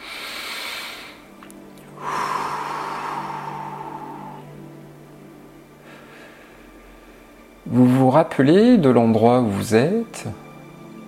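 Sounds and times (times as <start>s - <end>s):
slow inhale and exhale breathing: 0.0s - 7.5s
speech: 7.7s - 10.4s.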